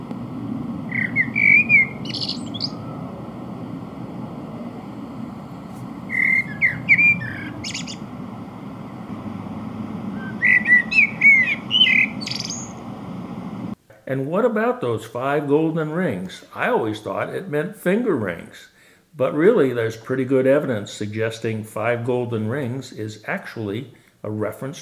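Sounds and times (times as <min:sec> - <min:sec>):
steady low rumble: 0:00.0 - 0:13.8
Eurasian blackbird singing at midnight in Sweden: 0:00.9 - 0:03.0, 0:06.1 - 0:08.1, 0:10.2 - 0:12.8
speech: 0:14.4 - 0:24.7.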